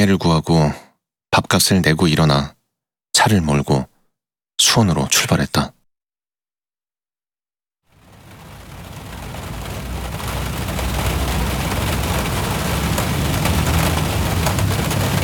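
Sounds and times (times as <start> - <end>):
speech: 0.0 - 0.8, 1.4 - 2.6, 3.2 - 3.9, 4.6 - 5.8
heavy rain shower pouring down: 7.9 - 15.2
faint low rumbles: 8.0 - 15.2.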